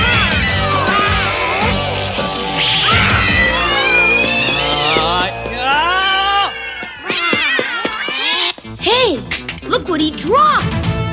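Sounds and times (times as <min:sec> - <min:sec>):
herd of cats meowing while chasing someone: 0:00.0 - 0:08.7
speech: 0:10.1 - 0:10.7.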